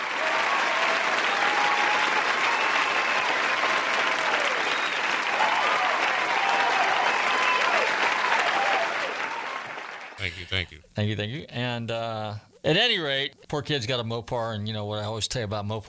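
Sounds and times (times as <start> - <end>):
faint cheers: 0.0 - 10.2
crowd applauding: 0.0 - 10.8
speech: 10.6 - 15.8.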